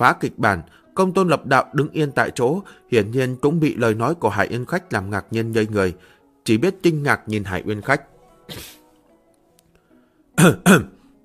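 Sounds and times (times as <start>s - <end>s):
speech: 0.0s - 8.8s, 10.4s - 11.0s
dry coughs behind a covered mouth: 8.5s - 8.8s, 10.4s - 11.0s.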